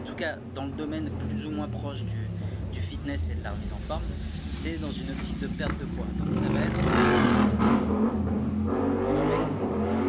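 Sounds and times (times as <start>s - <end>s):
speech: 0.2s - 8.9s
motorcycle engine revving hard while passing: 3.2s - 10.0s.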